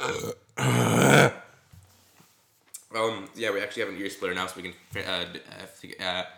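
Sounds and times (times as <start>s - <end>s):
loud burp: 0.0s - 1.4s
speech: 3.4s - 6.3s.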